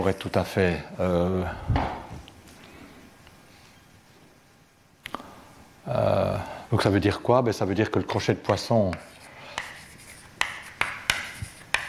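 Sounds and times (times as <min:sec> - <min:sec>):
speech: 0:00.0 - 0:02.0, 0:06.7 - 0:09.1
chalk or marker writing on a board: 0:08.5 - 0:11.8.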